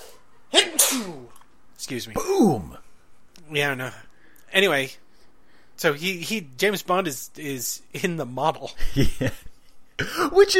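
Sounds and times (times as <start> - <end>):
loud human sneeze: 0.0 - 1.3, 2.2 - 2.8
speech: 1.9 - 2.8, 3.5 - 5.0, 5.8 - 10.5.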